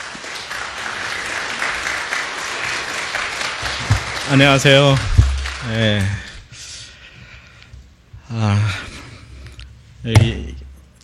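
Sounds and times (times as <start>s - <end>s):
audience applauding: 0.0s - 6.4s
speech: 4.3s - 6.2s, 8.4s - 8.9s, 10.0s - 10.5s.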